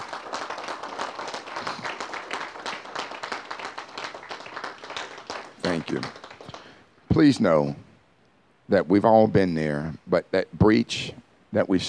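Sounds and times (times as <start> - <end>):
church audience clapping in praise during a morning service: 0.0 - 7.3
speech: 5.7 - 6.2, 7.1 - 7.8, 8.7 - 11.8.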